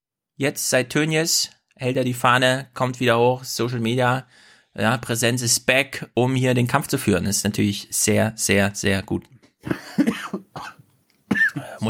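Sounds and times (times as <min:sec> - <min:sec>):
speech: 0:00.4 - 0:10.7
harsh coughs: 0:09.6 - 0:11.8.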